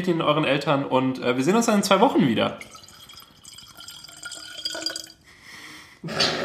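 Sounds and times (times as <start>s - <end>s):
speech: 0.0s - 2.8s
water trickling: 2.4s - 5.3s
water dripping and splashing: 2.6s - 5.2s.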